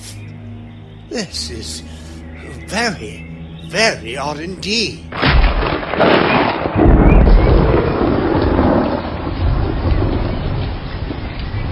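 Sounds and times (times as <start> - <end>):
speech: 1.1 - 5.7
deep rolling rumble of thunder: 5.1 - 11.6
steady heavy rain: 5.1 - 11.6
gusty wind: 5.6 - 11.6.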